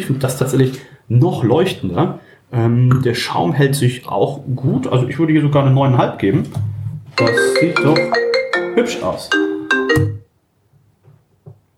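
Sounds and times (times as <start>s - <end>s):
speech: 0.0s - 9.4s
phone ringtone: 7.2s - 10.3s.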